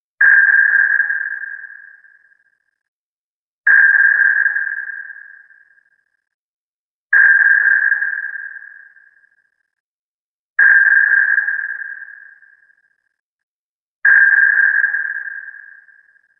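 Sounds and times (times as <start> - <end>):
sonar pings: 0.2 - 2.9, 3.7 - 6.4, 7.1 - 9.8, 10.6 - 13.2, 14.0 - 16.3.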